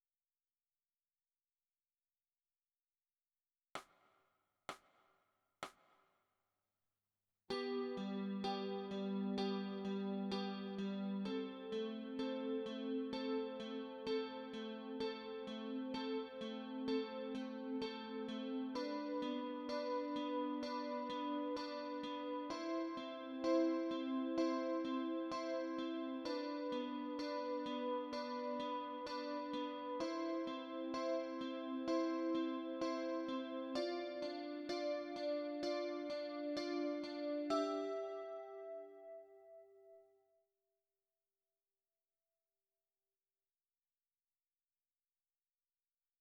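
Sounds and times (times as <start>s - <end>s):
guitar with chorus effect: 7.5s - 40.0s.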